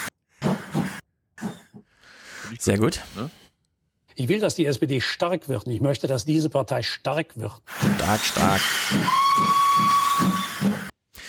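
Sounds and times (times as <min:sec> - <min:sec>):
speech: 0:02.5 - 0:03.4, 0:04.2 - 0:10.3
steam whistle shrieking: 0:07.9 - 0:10.9.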